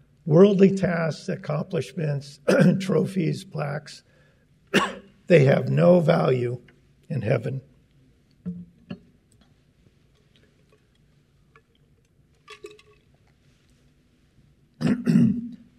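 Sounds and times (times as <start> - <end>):
speech: 0.2 - 4.1, 4.7 - 7.7
person coughing: 2.5 - 2.9, 4.8 - 5.1, 14.8 - 15.7
person clearing throat: 2.5 - 3.0, 4.8 - 5.1, 14.8 - 15.7.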